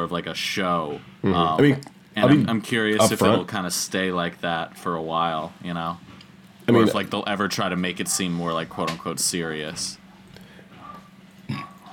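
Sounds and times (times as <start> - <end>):
speech: 0.0 - 6.1, 6.7 - 10.0
low murmuring: 1.2 - 3.4, 6.7 - 7.2
burp: 11.5 - 11.8.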